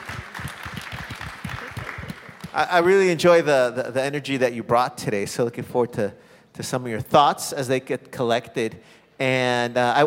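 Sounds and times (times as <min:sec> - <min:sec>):
audience applause at the close of a talk: 0:00.0 - 0:02.8
speech: 0:02.6 - 0:10.0.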